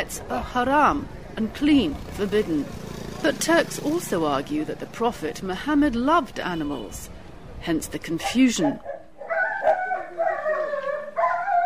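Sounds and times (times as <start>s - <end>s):
speech: 0.0s - 8.9s
dog yelping sharply in a shelter: 8.2s - 11.6s
several dogs howling and whining in a shelter: 8.7s - 11.6s.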